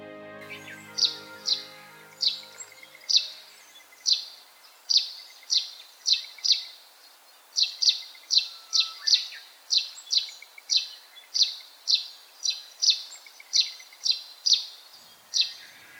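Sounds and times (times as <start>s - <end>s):
Russet sparrow chirping in a beech forest on the Daigenji plateau in Tokamachi Japan: 0.6s - 6.8s, 7.6s - 15.8s.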